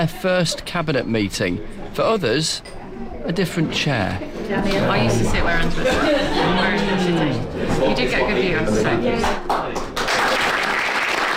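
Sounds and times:
speech: 0:00.0 - 0:09.6
laughter: 0:03.8 - 0:08.0
applause at a cabinet meeting welcoming a new leader: 0:09.2 - 0:11.3.

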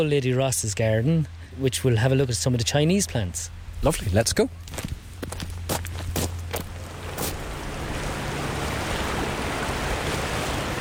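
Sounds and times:
speech: 0:00.0 - 0:04.9
river water flowing: 0:02.3 - 0:10.7
crisp footsteps: 0:03.8 - 0:07.5.

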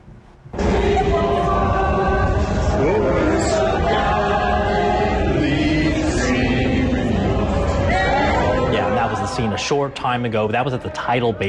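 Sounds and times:
large crowd singing the national anthem in unison at the Tidal Basin: 0:00.5 - 0:11.4
speech: 0:09.7 - 0:11.4.

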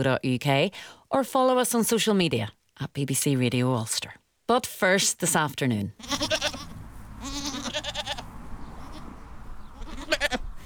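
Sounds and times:
speech: 0:00.0 - 0:06.6
low outdoor rumble: 0:06.0 - 0:10.6
young goats bleating: 0:06.0 - 0:10.6.

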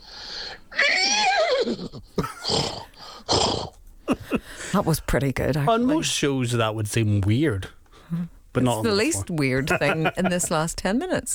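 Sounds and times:
breathy snorting bursts: 0:00.0 - 0:04.8
person imitating a horse's whinny: 0:00.7 - 0:03.8
speech: 0:01.6 - 0:02.6, 0:04.7 - 0:11.3
laughter: 0:02.2 - 0:02.7, 0:04.1 - 0:04.8, 0:08.6 - 0:11.2.

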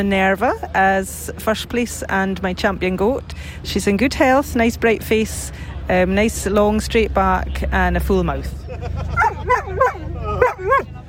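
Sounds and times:
speech: 0:00.0 - 0:11.0
laughter: 0:08.6 - 0:11.0
year-old Labrador dog giving yelping barks at a show: 0:09.1 - 0:11.0.

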